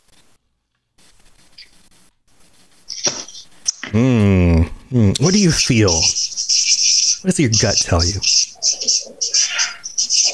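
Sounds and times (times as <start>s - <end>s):
marker squeaking on a whiteboard: 1.0s - 1.9s, 2.7s - 3.9s, 5.2s - 10.3s
speech: 3.9s - 6.3s, 7.2s - 9.0s.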